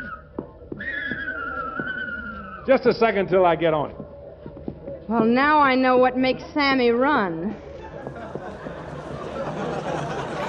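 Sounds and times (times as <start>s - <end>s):
horse hooves shifting: 0.0s - 6.4s, 7.6s - 10.2s
horse whinnying: 0.8s - 2.8s
speech: 2.7s - 4.0s, 5.1s - 7.7s
laughter: 7.6s - 10.4s.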